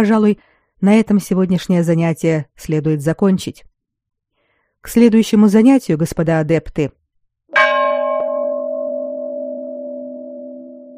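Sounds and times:
speech: 0.0 - 3.7, 4.8 - 7.0
school bell ringing the end of a lesson: 7.6 - 10.9.

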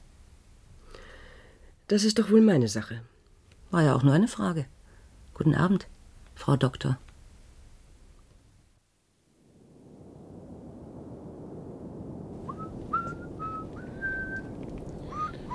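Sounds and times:
steady hiss and rumble: 0.0 - 15.5
speech: 1.9 - 3.1, 3.7 - 4.8, 5.4 - 7.0
person whistling a simple tune: 12.5 - 14.5, 15.1 - 15.5.

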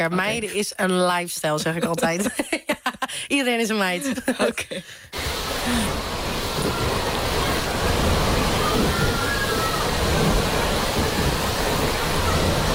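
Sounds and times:
speech: 0.0 - 6.9
rushing, sloshing water from a wave pool: 5.2 - 12.7.

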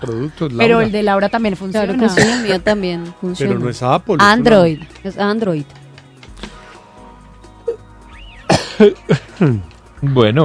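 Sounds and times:
speech: 0.0 - 5.8, 8.8 - 10.4
harsh coughs: 2.0 - 2.6, 8.5 - 9.6.

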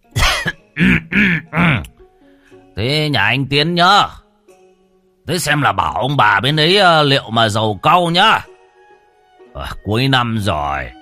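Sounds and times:
old man coughing indoors: 0.1 - 1.9
speech: 2.8 - 4.2, 5.3 - 8.5, 9.6 - 10.9.

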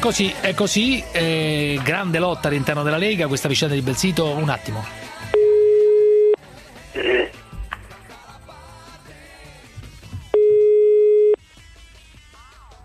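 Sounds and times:
speech: 0.0 - 5.1
telephone ringing on a radio call-in line: 5.4 - 6.4, 10.4 - 11.4.

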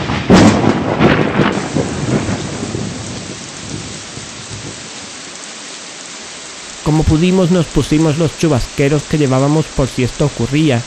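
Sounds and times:
thunder rumbling across a valley between mountains: 0.0 - 4.9
heavy rain pouring down in a mountain valley: 0.0 - 10.8
speech: 6.9 - 10.8.

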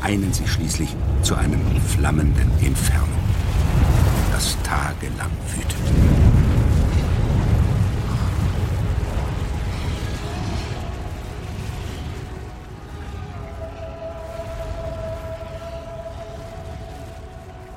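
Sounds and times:
speech: 0.0 - 6.6
volcanic explosion of a mountain over 4000 metres high: 0.0 - 17.7.

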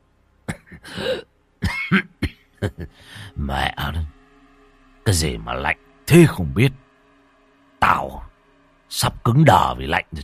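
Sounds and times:
man coughing: 0.4 - 3.4
speech: 1.9 - 2.1, 5.1 - 6.8, 9.0 - 10.2.

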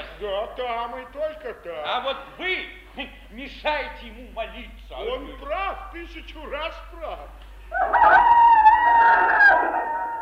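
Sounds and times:
speech: 0.2 - 8.5
rooster crowing: 7.7 - 10.2.

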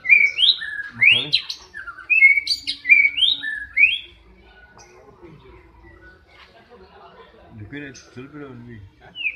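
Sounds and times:
Oriental magpie-robin harsh chatter: 0.0 - 6.6
Oriental magpie-robin song: 0.0 - 9.3.

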